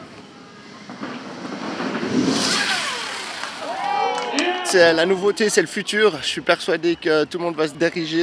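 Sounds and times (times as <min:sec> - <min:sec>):
electric motorcycle revving during a demonstration: 0:02.0 - 0:03.7
speech: 0:04.7 - 0:08.2.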